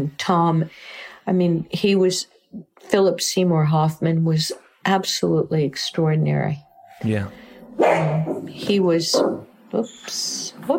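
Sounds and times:
speech: 0.0 - 10.7
dog barking: 7.7 - 8.5, 9.1 - 9.5.

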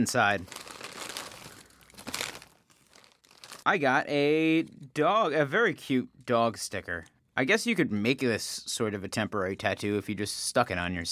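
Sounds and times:
speech: 0.0 - 0.8, 3.7 - 11.0
hand rummaging in a crinkly bag to pull out a small prize: 0.0 - 3.7.

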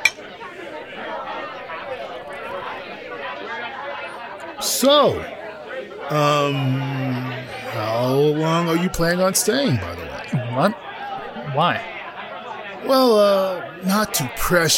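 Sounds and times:
party crowd chatter: 0.0 - 14.7
speech: 4.6 - 5.4, 6.1 - 7.2, 7.8 - 10.0, 10.6 - 10.8, 11.6 - 11.9, 12.8 - 14.7
sustained vocal tone: 6.1 - 8.5.

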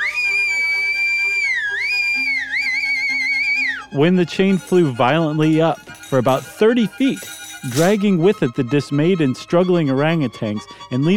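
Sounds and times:
loud shrill whistle: 0.0 - 4.0
speech: 3.9 - 11.1.

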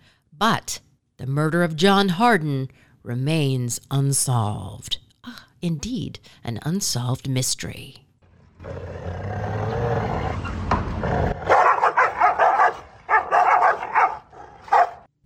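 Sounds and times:
speech: 0.4 - 8.0, 8.6 - 9.6
dog growling low: 8.6 - 15.0
dog barking loudly in bursts: 11.4 - 15.1.

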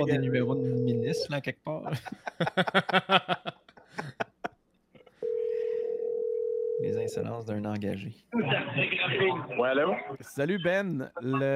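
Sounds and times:
speech: 0.0 - 4.2, 7.1 - 11.5
rhythmic laughter: 1.9 - 4.6
steady loud telephone dial tone: 5.2 - 6.8.

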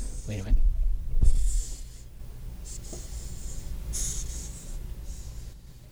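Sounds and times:
speech: 0.3 - 0.7
hissing cockroach pushing air through spiracles: 1.3 - 5.5.

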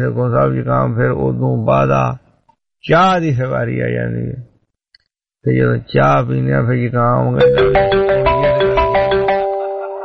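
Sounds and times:
speech: 0.0 - 2.2, 2.8 - 4.5, 5.4 - 8.2
electronic telephone ringing: 7.4 - 10.0.

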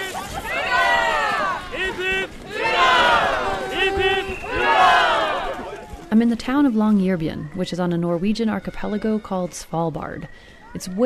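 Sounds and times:
crowd of a couple thousand happy people cheering and shouting at a celebration: 0.0 - 6.1
speech: 6.2 - 11.0.

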